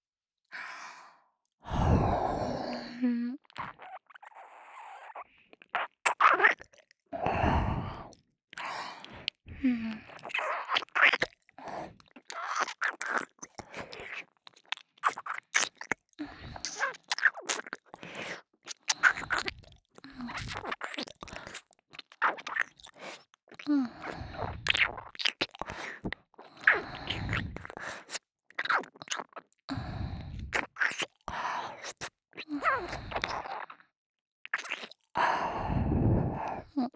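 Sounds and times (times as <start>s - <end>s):
breathy sighs: 1.6s - 3.3s, 7.2s - 10.1s, 35.2s - 36.8s
mouth sounds of nibbling and eating an ear: 3.4s - 4.4s, 5.0s - 6.9s, 10.0s - 11.4s, 12.0s - 29.6s, 30.5s - 31.2s, 31.8s - 33.7s, 34.5s - 35.1s.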